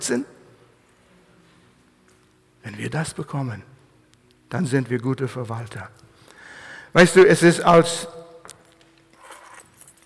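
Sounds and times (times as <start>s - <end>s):
speech: 0.0s - 0.4s, 2.6s - 3.7s, 4.5s - 6.0s, 6.9s - 8.2s
keys jangling on a keyring: 9.1s - 10.0s.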